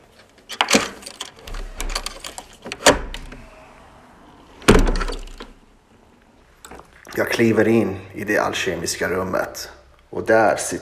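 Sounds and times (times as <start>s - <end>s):
key clattering and turning in a lock: 0.4s - 3.4s
old door creaking and thumping open: 0.4s - 5.7s
speech: 7.2s - 10.7s.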